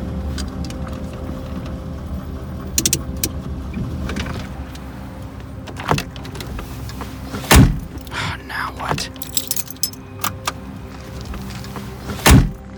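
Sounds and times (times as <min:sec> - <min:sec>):
car engine idling while pulling over in a warehouse district: 0:00.0 - 0:12.6
mechanical clunks: 0:02.7 - 0:03.4, 0:05.7 - 0:08.1, 0:11.3 - 0:12.6
sharp loud thud: 0:07.5 - 0:08.0, 0:12.2 - 0:12.6.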